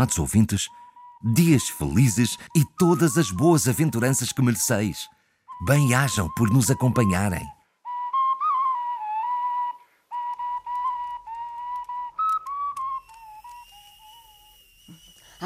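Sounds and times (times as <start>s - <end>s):
kettle whistling as water boils: 0.0s - 6.9s, 7.9s - 15.4s
speech: 0.0s - 7.6s.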